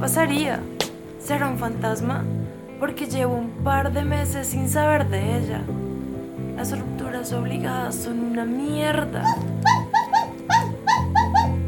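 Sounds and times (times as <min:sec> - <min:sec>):
speech: 0:00.0 - 0:05.9, 0:06.6 - 0:09.8
dog whining yelps: 0:09.2 - 0:11.6.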